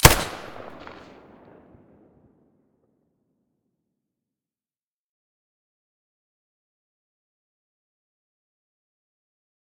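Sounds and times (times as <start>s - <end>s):
weapons firing with silencer: 0.0s - 1.7s.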